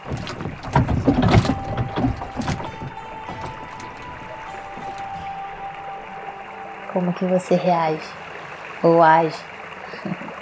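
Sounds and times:
rowboat knocking against something in water: 0.0 - 7.3
water sloshing and splashing: 0.0 - 8.6
speech: 7.0 - 8.2, 8.8 - 10.3.

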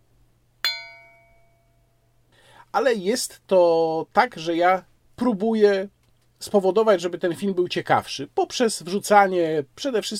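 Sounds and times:
faint low hum: 0.0 - 10.1
small bell ringing: 0.6 - 2.0
speech: 2.7 - 10.1.

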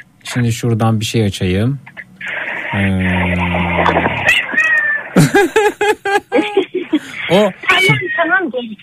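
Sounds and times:
speech: 0.4 - 4.5, 5.2 - 8.8
cat meowing: 4.2 - 5.2, 7.7 - 8.5
laughter: 5.2 - 7.5.

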